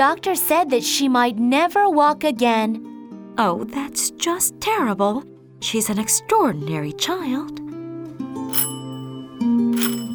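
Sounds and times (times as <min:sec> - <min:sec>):
speech: 0:00.0 - 0:07.6
doorbell ringing: 0:08.5 - 0:10.1.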